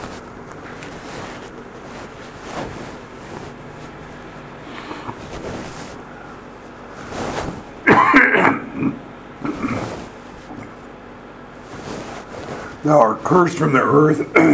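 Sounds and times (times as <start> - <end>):
low rumble: 0.0 - 14.5
person with a post-nasal drip clearing throat: 7.8 - 9.9, 14.3 - 14.5
person with a post-nasal drip coughing: 7.8 - 9.9, 14.3 - 14.5
speech: 12.9 - 14.5.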